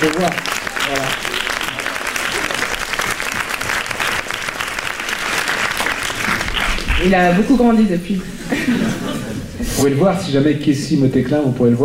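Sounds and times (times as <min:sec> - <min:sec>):
speech: 0:00.0 - 0:01.2, 0:07.0 - 0:11.8
audience applauding a young actor: 0:00.0 - 0:07.6
laughter: 0:08.2 - 0:09.9.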